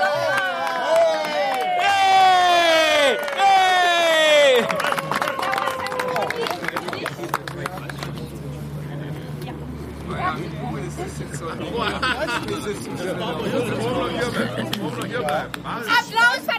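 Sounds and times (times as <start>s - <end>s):
loud rising whoops and shouts: 0.0s - 6.4s
audience clapping and cheering: 0.0s - 8.6s, 14.6s - 16.1s
audience voices: 0.0s - 16.5s
laughter: 2.8s - 7.4s, 10.9s - 15.5s.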